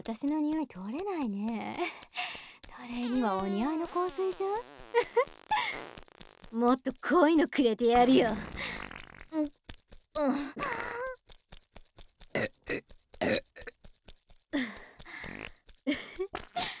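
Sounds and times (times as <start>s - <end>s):
speech: 0.0s - 9.6s, 10.2s - 11.1s
loud croaking burps: 2.9s - 6.6s, 7.9s - 9.6s, 10.2s - 11.2s, 12.3s - 13.8s, 15.2s - 16.7s.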